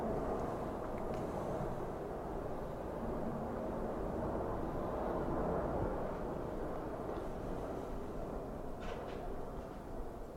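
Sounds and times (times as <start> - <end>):
airplane flying overhead: 0.0 - 10.3.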